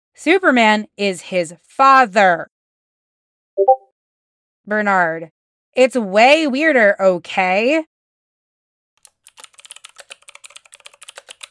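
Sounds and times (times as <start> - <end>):
speech: 0.2 - 2.5, 4.7 - 7.9
typing on a computer keyboard: 9.0 - 11.4.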